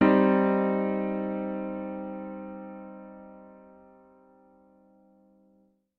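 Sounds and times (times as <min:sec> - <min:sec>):
minor chord for ear training: 0:00.0 - 0:05.4.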